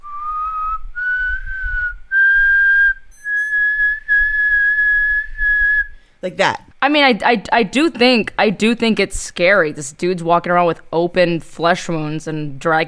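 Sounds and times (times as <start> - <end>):
eerie human whistling in a slow melody: 0.0 - 6.0
speech: 6.2 - 12.8.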